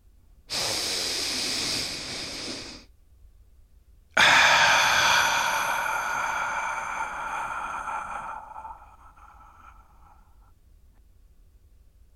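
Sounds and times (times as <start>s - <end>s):
deep breath: 0.5s - 2.9s, 4.2s - 10.6s.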